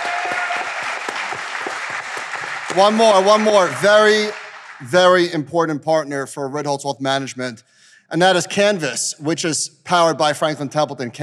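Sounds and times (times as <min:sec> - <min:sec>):
audience applause: 0:00.0 - 0:04.9
speech: 0:02.8 - 0:11.2.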